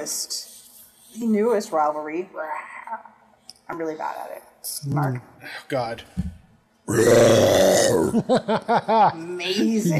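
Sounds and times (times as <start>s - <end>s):
speech: 0.0s - 0.5s, 1.1s - 3.1s, 3.7s - 9.9s
loud drawn-out croaking faked burp sound from a voice: 6.9s - 8.3s
laughter: 8.1s - 9.9s.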